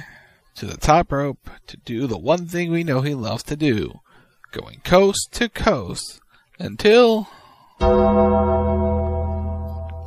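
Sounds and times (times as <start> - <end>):
speech: 0.6 - 8.6
gong strike at a professional wrestling event: 7.8 - 10.0.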